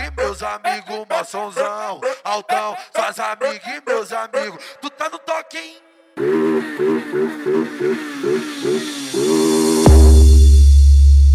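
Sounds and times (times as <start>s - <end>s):
speech: 0.3s - 10.2s
motorcycle engine revving: 6.2s - 10.7s
deep booming bass drop in a music track: 9.2s - 11.3s.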